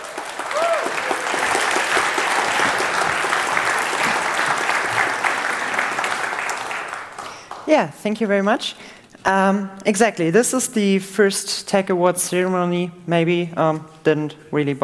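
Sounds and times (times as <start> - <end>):
room full of people applauding: 0.0 - 7.7
speech: 7.7 - 14.8.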